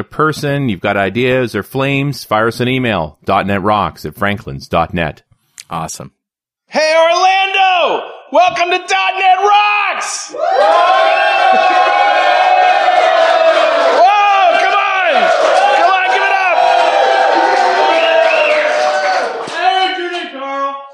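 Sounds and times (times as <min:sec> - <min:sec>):
speech: 0:00.0 - 0:12.3
enthusiastic conference crowd cheering and whooping: 0:10.3 - 0:20.2.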